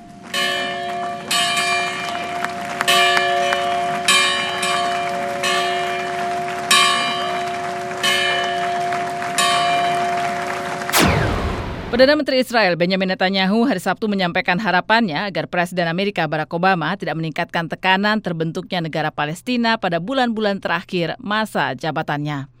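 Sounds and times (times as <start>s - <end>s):
historic church bell ringing: 0.0s - 11.0s
crowd clapping: 0.8s - 12.1s
speech: 12.0s - 22.5s.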